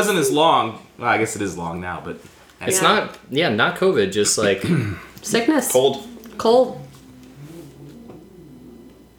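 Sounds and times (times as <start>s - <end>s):
speech: 0.0s - 6.8s
cat growling while eating its food: 5.9s - 9.1s.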